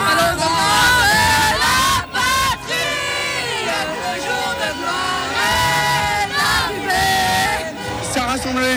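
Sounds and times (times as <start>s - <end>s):
crowd shouting and cheering in the street after a football World Cup final win: 0.0s - 8.7s.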